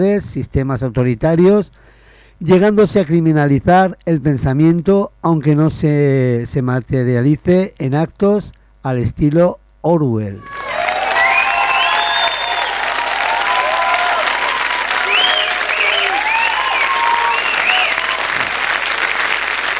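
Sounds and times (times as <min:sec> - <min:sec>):
speech: 0:00.0 - 0:10.6
faint high whistling tones: 0:10.4 - 0:18.5
sustained crowd applause: 0:10.4 - 0:19.7.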